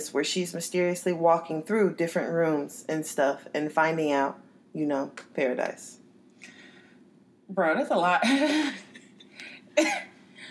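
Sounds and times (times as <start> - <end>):
speech: 0.0 - 6.0, 7.5 - 8.8, 9.8 - 10.1
person coughing: 8.2 - 9.0, 9.8 - 10.2.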